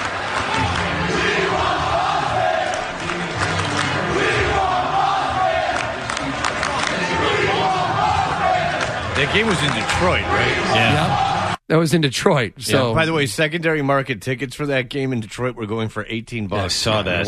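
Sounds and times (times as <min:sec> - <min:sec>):
large indoor crowd cheering: 0:00.0 - 0:11.6
speech: 0:09.2 - 0:17.2.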